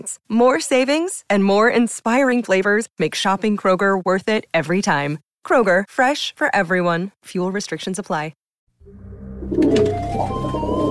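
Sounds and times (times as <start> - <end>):
speech: 0.0 - 10.8
soft flutter or rustle of wings: 9.4 - 10.9
homing pigeons cooing: 9.5 - 10.9.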